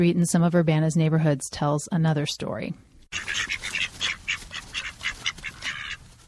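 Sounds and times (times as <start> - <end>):
speech: 0.0 - 3.6
small flock of bantam ducks quacking: 3.1 - 6.1.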